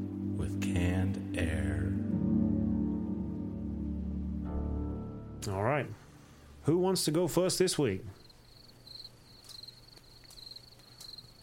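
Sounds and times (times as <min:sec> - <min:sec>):
faint low drone: 0:00.0 - 0:06.7
speech: 0:05.4 - 0:06.0, 0:06.6 - 0:08.2
continuous high insect hum: 0:08.1 - 0:11.4
crickets chirping: 0:08.1 - 0:11.4.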